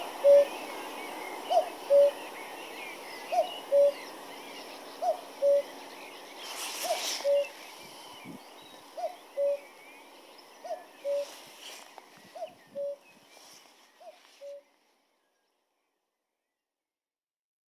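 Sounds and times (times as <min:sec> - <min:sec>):
common cuckoo calling two-note cu-ckoo: 0:00.0 - 0:09.8, 0:10.6 - 0:14.8
brief rustle: 0:00.0 - 0:15.9
soft background birdsong: 0:00.0 - 0:16.8.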